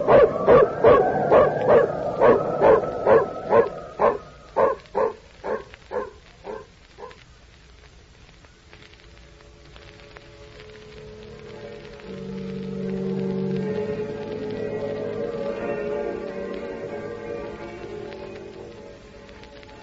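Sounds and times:
female dog barking and whimpering: 0:00.0 - 0:07.2
faint hiss: 0:00.0 - 0:19.8.

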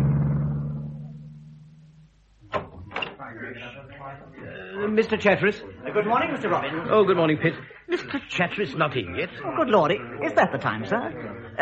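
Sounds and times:
car engine idling in traffic: 0:00.0 - 0:02.4
voices: 0:02.4 - 0:11.6
speech: 0:03.5 - 0:11.6.

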